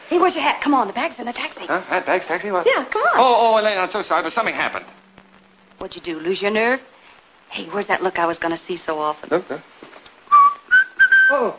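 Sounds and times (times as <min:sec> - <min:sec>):
speech: 0:00.1 - 0:05.0, 0:05.8 - 0:06.9, 0:07.5 - 0:09.7, 0:11.3 - 0:11.5
person whistling: 0:10.3 - 0:11.5.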